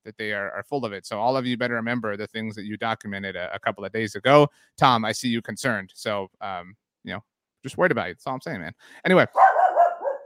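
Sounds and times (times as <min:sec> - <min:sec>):
speech: 0:00.0 - 0:09.6
dog barking in harsh overlapping yaps: 0:09.3 - 0:10.2.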